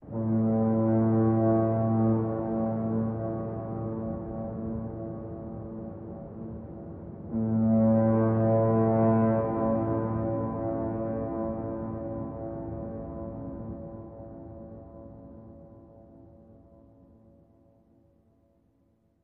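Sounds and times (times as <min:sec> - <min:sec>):
foghorn ambient: 0:00.0 - 0:06.4, 0:07.3 - 0:15.5.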